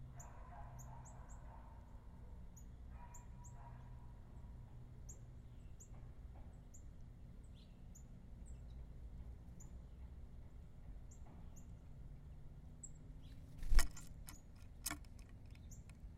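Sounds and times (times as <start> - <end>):
birds at a feeder chirping: 0.0 - 16.1
soft scratching and rustling: 13.4 - 15.6
clicks and knocks of pecking or claws: 13.6 - 16.1.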